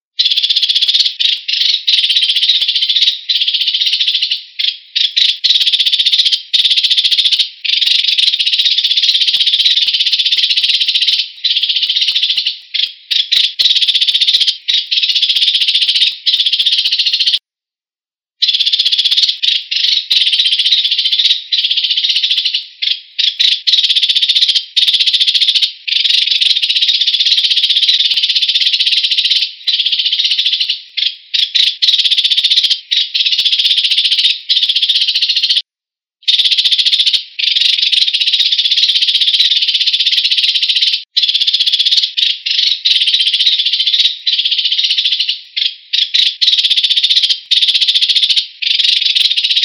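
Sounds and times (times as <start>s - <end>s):
house sparrows chirping: 0.2s - 17.4s, 18.4s - 35.6s, 36.3s - 49.6s.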